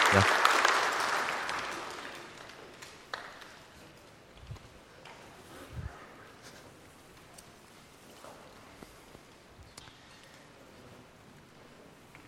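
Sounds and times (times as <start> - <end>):
crowd applauding: 0.0 - 3.8
speech: 0.1 - 0.4.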